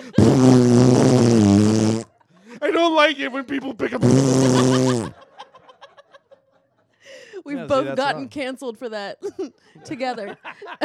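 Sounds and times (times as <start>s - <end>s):
long loud fart: 0.2s - 2.1s, 4.0s - 5.2s
laughter: 2.1s - 7.0s, 9.2s - 10.8s
speech: 3.1s - 5.2s, 7.4s - 10.8s.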